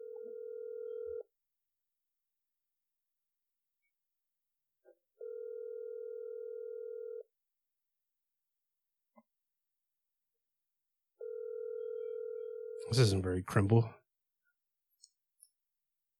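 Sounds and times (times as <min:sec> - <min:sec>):
ringback tone of an outgoing telephone call: 0:00.0 - 0:01.2, 0:05.2 - 0:07.2, 0:11.2 - 0:12.8
speech: 0:12.9 - 0:14.0.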